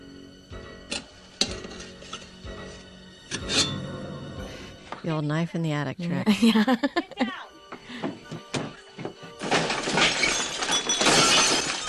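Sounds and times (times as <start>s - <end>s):
speech: 5.0s - 7.2s
laughter: 6.2s - 7.5s
breakaway glass shattering: 9.4s - 11.8s.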